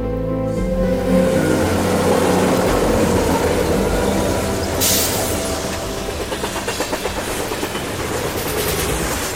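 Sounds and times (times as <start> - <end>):
train jolting along the rails: 0.1 - 9.3
clickety-clack of train wheels: 3.4 - 9.3.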